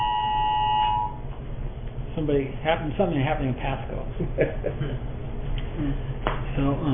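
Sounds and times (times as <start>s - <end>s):
Amber Alert emergency alert tone from a phone: 0.0s - 1.2s
speech: 2.2s - 5.2s, 5.8s - 6.9s
laughter: 4.1s - 5.1s.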